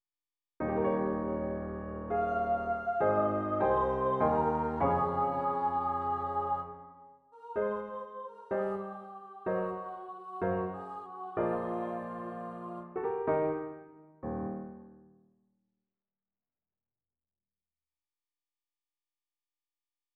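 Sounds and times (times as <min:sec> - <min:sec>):
piano: 0:00.6 - 0:15.3.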